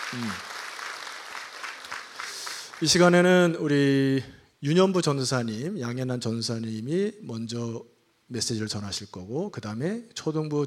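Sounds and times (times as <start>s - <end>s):
crowd clapping at a church children's-ministry gathering: 0.0s - 3.2s
speech: 0.1s - 0.5s, 2.8s - 10.6s.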